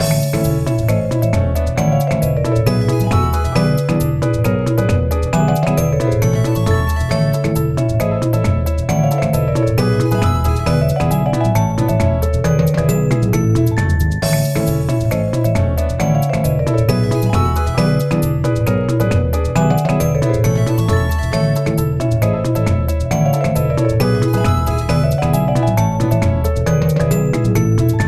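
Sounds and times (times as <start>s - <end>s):
theme music: 0.0s - 28.0s.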